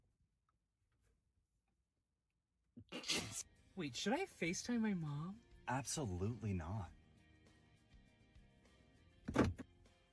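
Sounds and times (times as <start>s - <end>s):
speech: 2.9s - 7.0s
car door locks unlocking: 9.3s - 9.6s.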